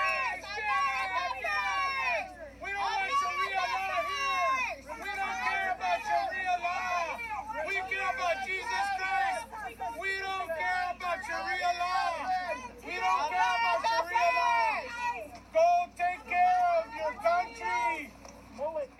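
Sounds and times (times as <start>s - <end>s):
right-wing pro-Trump crowd at a rally shouting heckling and chanting: 0.0s - 18.2s.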